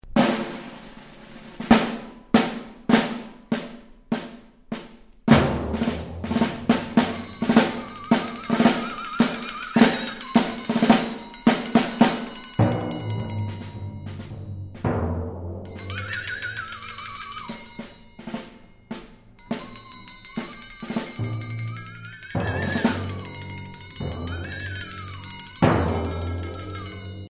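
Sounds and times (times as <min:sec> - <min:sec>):
snare drum: 0:00.0 - 0:27.2
flexatone: 0:06.4 - 0:27.3.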